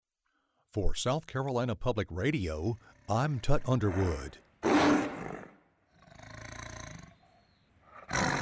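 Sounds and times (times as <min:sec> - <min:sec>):
speech: 0:00.7 - 0:04.4
tiger roaring: 0:02.8 - 0:08.4.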